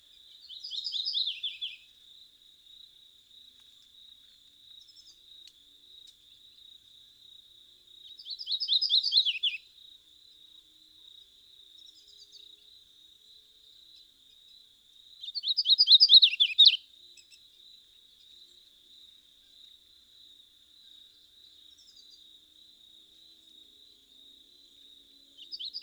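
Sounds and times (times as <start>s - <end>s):
Painted Redstart Myioborus pictus warbler: 0.4s - 1.8s, 8.1s - 9.6s, 15.2s - 16.8s, 25.4s - 25.8s.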